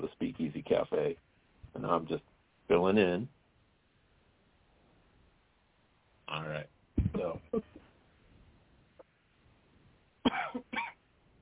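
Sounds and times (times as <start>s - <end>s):
faint noise: 0.0s - 11.3s
speech: 0.1s - 3.4s, 6.3s - 7.7s
person coughing: 10.2s - 11.0s.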